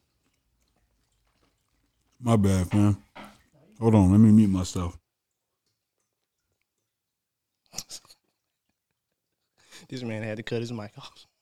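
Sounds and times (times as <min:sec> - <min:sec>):
person chewing crunchy food: 0:00.0 - 0:02.2
speech: 0:02.2 - 0:03.0, 0:03.8 - 0:05.0, 0:09.9 - 0:11.3.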